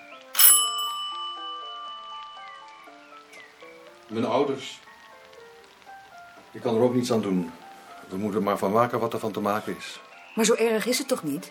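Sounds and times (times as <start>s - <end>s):
doorbell ringing with a bright metallic strike: 0.3s - 3.1s
speech: 4.1s - 4.8s, 6.6s - 11.4s.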